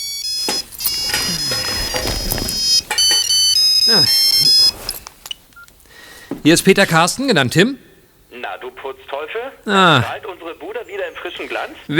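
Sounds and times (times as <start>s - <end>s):
bright melodic mobile phone ringtone in stepped electronic tones: 0.0s - 5.0s
speech: 6.4s - 7.8s, 8.6s - 11.9s.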